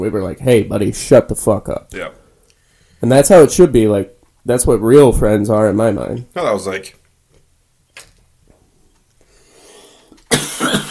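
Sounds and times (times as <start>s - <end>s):
speech: 0.0s - 2.2s, 3.0s - 7.0s
faint breathing: 2.2s - 3.1s, 9.2s - 10.3s
loud harsh cough: 10.3s - 10.9s.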